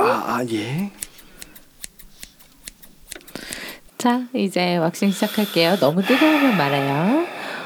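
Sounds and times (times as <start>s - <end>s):
speech: 0.2s - 1.1s, 4.0s - 7.3s
scissors trimming body hair before waxing: 0.6s - 3.9s.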